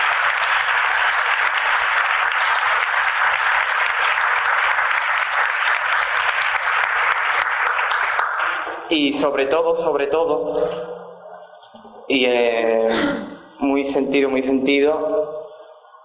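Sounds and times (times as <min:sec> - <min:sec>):
crowd applauding: 0:00.0 - 0:09.1
speech: 0:08.9 - 0:11.0, 0:12.1 - 0:15.3.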